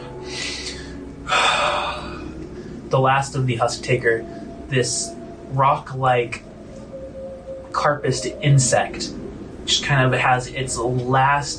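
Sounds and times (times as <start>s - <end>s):
low hum: 0.0s - 11.5s
man breathing heavily lying on his back in a warm fetid cavern: 0.2s - 2.9s
speech: 2.9s - 6.5s, 7.8s - 11.5s.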